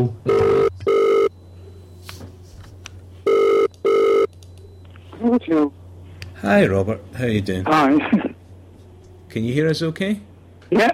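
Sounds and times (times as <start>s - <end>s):
speech: 0.0s - 0.5s, 5.2s - 5.8s, 6.4s - 8.3s, 9.3s - 10.9s
phone ringing tone while calling a mobile: 0.3s - 1.4s, 3.2s - 4.3s.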